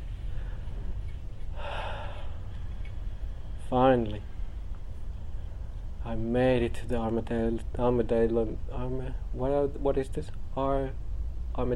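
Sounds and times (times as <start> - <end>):
quiet low hum: 0.0 - 11.7
deep breath during a meditation exercise: 0.1 - 3.6
speech: 3.7 - 4.3, 6.0 - 11.0, 11.6 - 11.7.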